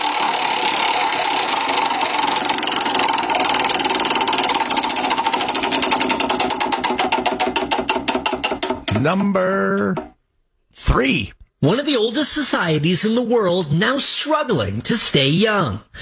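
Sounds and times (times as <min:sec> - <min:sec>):
prize wheel spinning with ticking clicks: 0:00.0 - 0:10.2
speech: 0:09.0 - 0:10.1, 0:11.0 - 0:15.9.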